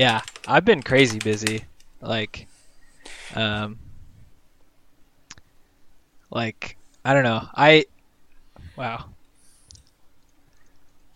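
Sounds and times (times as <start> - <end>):
typing on a computer keyboard: 0.0 - 1.7
speech: 0.0 - 3.8, 6.3 - 7.9, 8.8 - 9.1.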